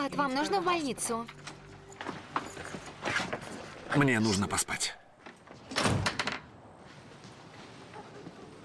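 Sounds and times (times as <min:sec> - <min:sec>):
speech: 0:00.0 - 0:01.4, 0:03.9 - 0:05.0
door being pushed shut with a rattling thud: 0:05.7 - 0:06.4.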